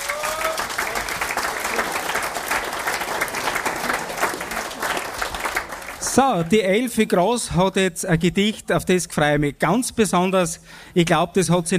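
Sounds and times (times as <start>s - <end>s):
audience applause: 0.0s - 6.4s
speech: 6.1s - 11.7s.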